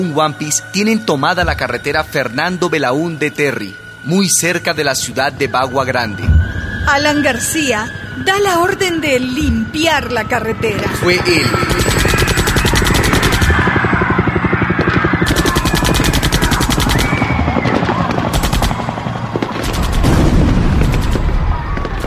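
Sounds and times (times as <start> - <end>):
speech: 0.0 - 11.8
gunfire from police firing on protesters blocking a highway near Bagua Grande, Peru: 11.3 - 22.0.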